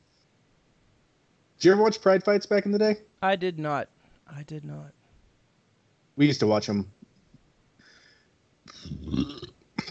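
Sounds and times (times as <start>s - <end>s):
speech: 1.6s - 5.0s, 6.2s - 7.0s, 8.7s - 9.6s
deep croaky burp: 8.7s - 9.8s.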